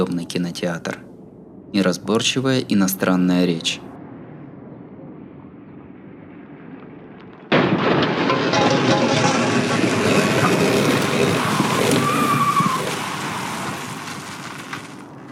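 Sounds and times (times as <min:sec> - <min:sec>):
speech: 0:00.0 - 0:01.1, 0:01.7 - 0:03.9
car crash in a road accident on a film screen: 0:06.8 - 0:15.3
sustained crunching grinding metal from a car crash: 0:07.5 - 0:15.3.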